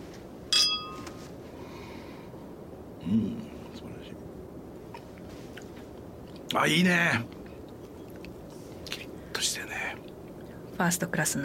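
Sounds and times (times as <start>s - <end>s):
glasses of Koshu wine clinking in a toast: 0.5s - 1.0s
speech: 3.1s - 3.5s, 6.5s - 7.4s, 10.8s - 11.4s.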